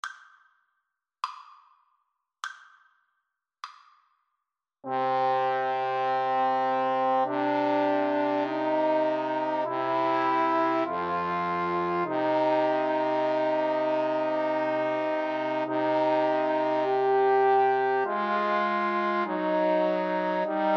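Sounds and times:
trombone trio playing an aequale: 0:04.9 - 0:20.7.

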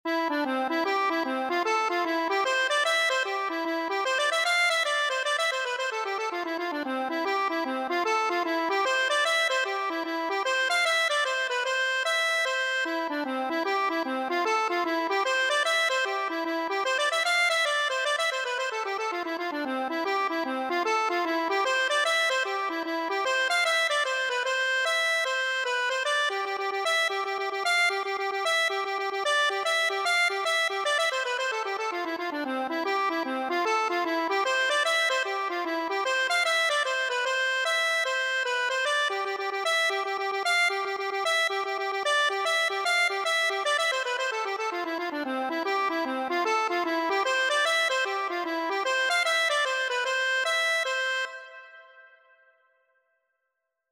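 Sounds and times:
accordion: 0:00.1 - 0:52.4.

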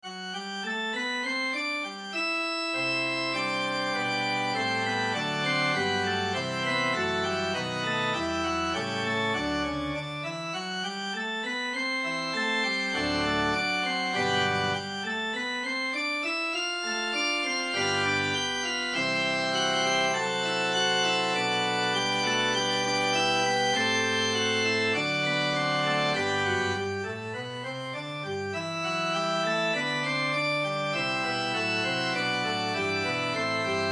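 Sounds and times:
organ music: 0:00.0 - 0:33.9.

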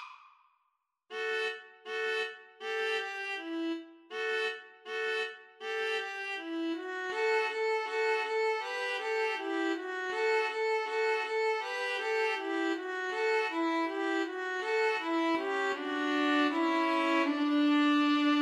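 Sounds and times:
string trio karaoke backing track: 0:01.1 - 0:18.4.

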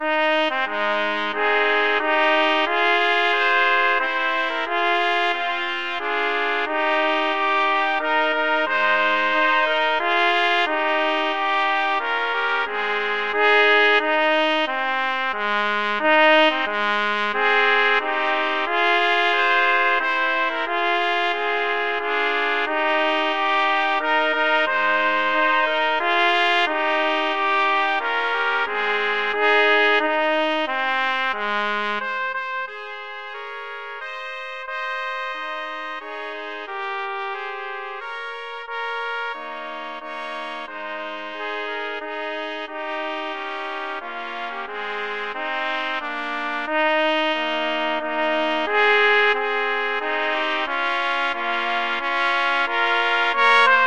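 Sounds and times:
trumpet trio playing: 0:00.0 - 0:53.8.

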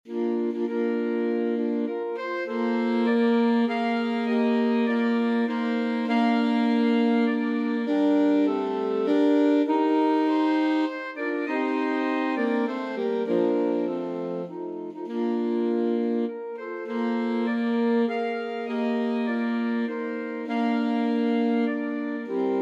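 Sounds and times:
saxophone ensemble playing a nocturne: 0:00.0 - 0:22.6.

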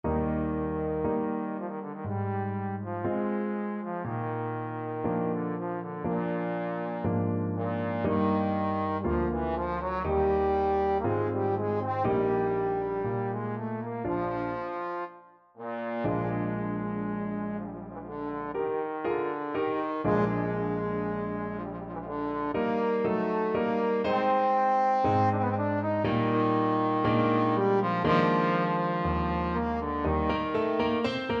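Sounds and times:
trombone playing romance: 0:00.1 - 0:31.3.

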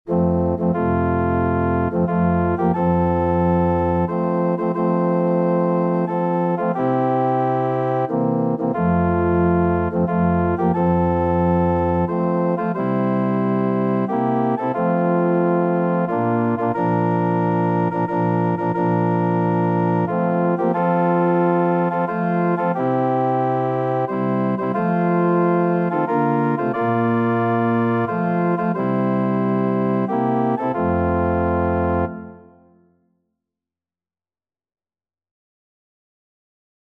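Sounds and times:
organ: 0:00.1 - 0:32.7.

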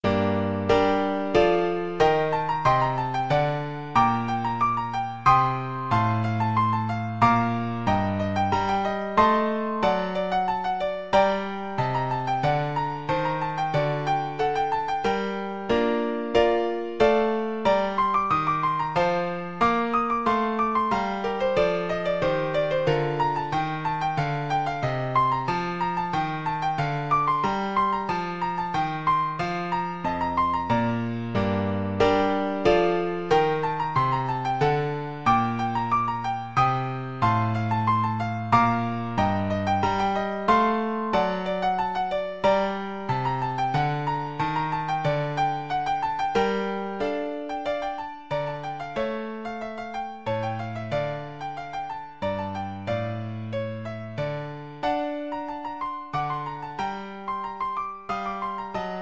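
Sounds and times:
piano rondeau: 0:00.0 - 0:59.0.

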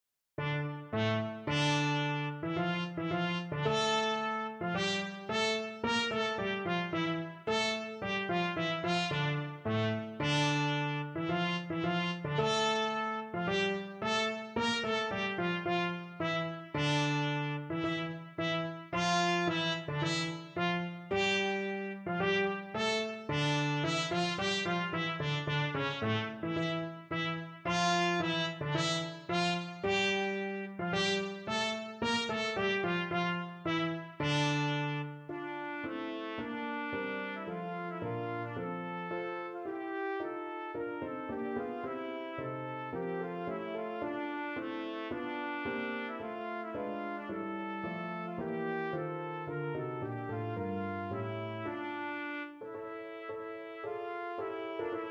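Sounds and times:
trumpet prelude: 0:00.4 - 0:55.0.

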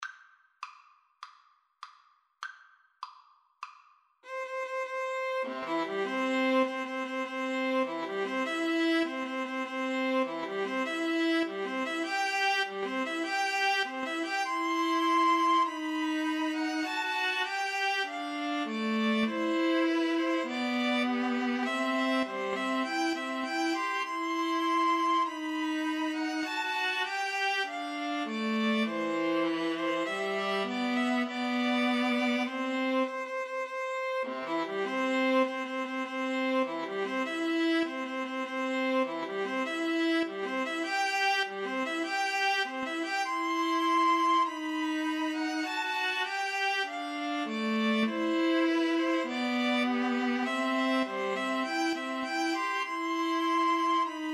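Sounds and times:
string trio playing a wedding march: 0:04.2 - 0:54.3.

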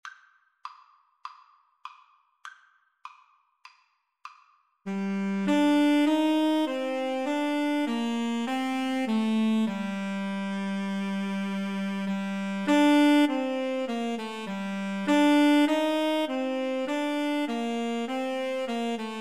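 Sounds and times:
tenor saxophone duet: 0:04.9 - 0:19.1.

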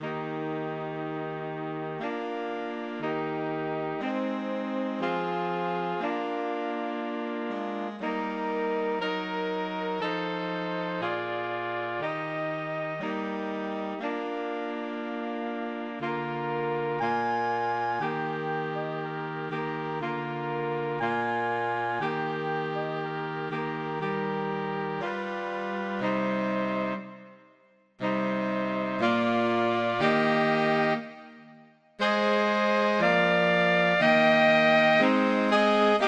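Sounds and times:
saxophone quartet playing: 0:00.0 - 0:27.3, 0:28.0 - 0:36.0.

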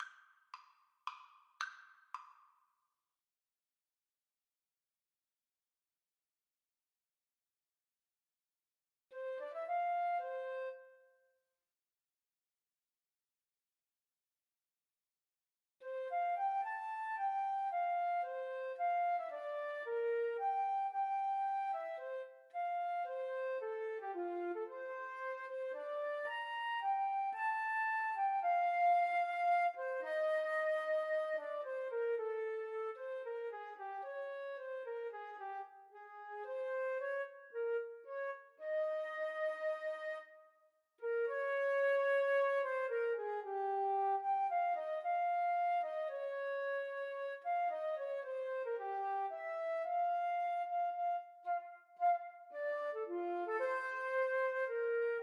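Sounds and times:
flute duet: 0:09.2 - 0:11.1, 0:15.8 - 0:55.2.

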